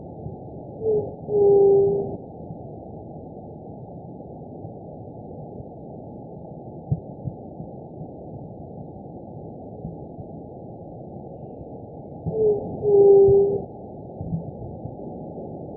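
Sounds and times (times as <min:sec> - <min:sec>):
speech: 0:00.8 - 0:01.6
White-tipped dove Leptotila verreauxi cooing: 0:00.8 - 0:02.2, 0:12.3 - 0:13.7.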